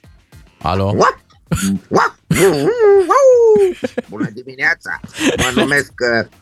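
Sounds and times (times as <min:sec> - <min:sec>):
speech: 0:00.6 - 0:06.3
man imitating a dog barking: 0:00.8 - 0:03.8, 0:05.4 - 0:05.8
man imitating a dog with a long wavering whine: 0:00.9 - 0:03.8
laughter: 0:02.3 - 0:06.2.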